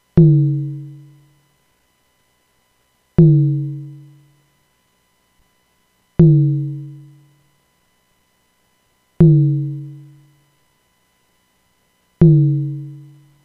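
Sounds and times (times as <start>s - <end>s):
nonlinear drum: 0.2s - 1.1s, 3.2s - 4.0s, 6.2s - 7.0s, 9.2s - 10.0s, 12.2s - 13.1s.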